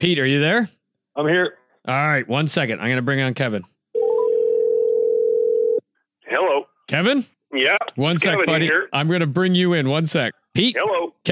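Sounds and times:
speech: 0.0s - 3.7s, 6.9s - 11.3s
telephone dial tone while placing call: 4.0s - 5.8s.

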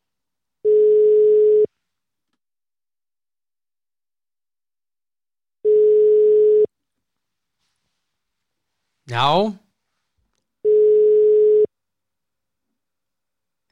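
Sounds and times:
telephone ringback tone while placing a call: 0.6s - 1.7s, 5.6s - 6.7s, 10.6s - 11.7s
speech: 9.1s - 9.6s.

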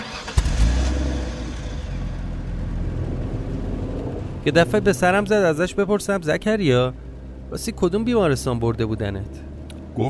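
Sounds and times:
car engine starting and pulling away: 0.0s - 10.0s
speech: 4.4s - 10.0s.

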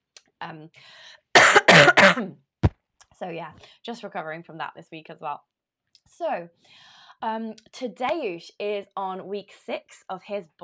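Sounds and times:
speech: 0.4s - 2.5s, 3.2s - 5.5s, 6.1s - 10.6s
person coughing: 1.4s - 2.3s.

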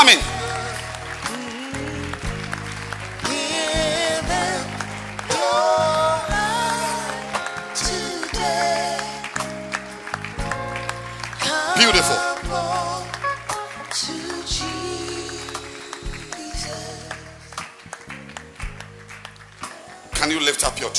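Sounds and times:
voices singing: 0.0s - 9.9s, 11.4s - 17.7s
audience clapping along: 0.0s - 20.9s
loud music: 0.0s - 20.9s.

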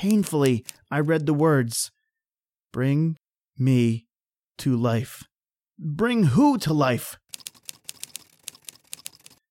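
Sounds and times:
typewriter keys tapping: 0.0s - 1.1s, 7.3s - 9.4s
speech: 0.0s - 2.0s, 2.7s - 7.2s.

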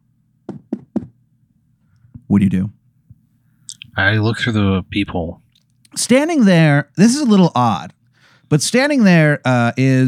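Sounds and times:
knocking on a door: 0.5s - 1.2s
faint low hum: 1.4s - 10.0s
speech: 2.3s - 2.8s, 4.0s - 5.4s, 6.0s - 10.0s.

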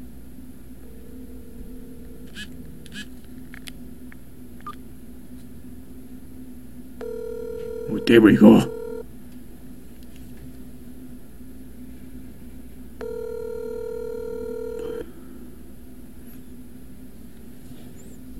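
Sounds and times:
constant low hum: 0.0s - 18.3s
telephone ringing tone as a call is placed: 0.8s - 3.0s, 7.0s - 9.0s, 13.0s - 15.1s
speech: 8.1s - 8.8s.

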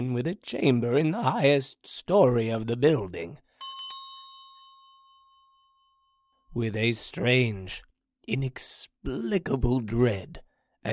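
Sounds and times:
speech: 0.0s - 3.4s, 6.6s - 10.9s
old hanging bell ringing: 3.6s - 6.5s.

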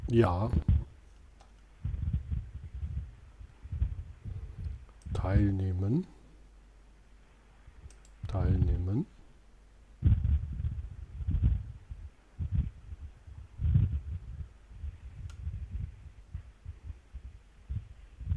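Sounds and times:
low wind-like rumble buffeting a phone line: 0.0s - 1.0s, 1.8s - 5.6s, 7.6s - 9.0s, 10.0s - 18.3s
speech: 0.1s - 0.8s, 5.2s - 6.2s, 8.3s - 9.1s.

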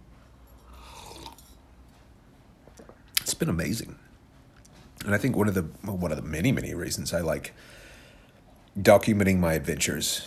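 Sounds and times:
slurping sip of coffee: 0.6s - 1.6s
speech: 3.4s - 4.1s, 5.0s - 7.8s, 8.8s - 10.2s.

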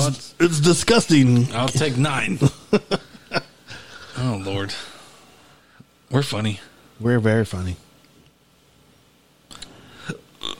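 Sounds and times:
speech: 0.0s - 3.1s, 4.2s - 4.9s, 6.1s - 7.8s
short soft burp: 10.0s - 10.5s.

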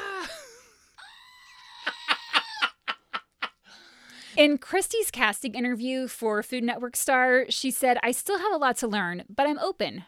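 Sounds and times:
goat screaming with nasal bleats: 1.0s - 2.7s
speech: 4.4s - 10.0s.

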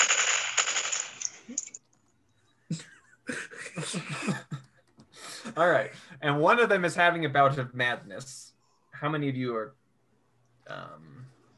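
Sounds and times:
gunfire sound effect as men shoot: 0.0s - 1.4s
laughter: 2.7s - 5.4s
speech: 5.6s - 8.4s, 9.0s - 9.8s, 10.7s - 11.3s.

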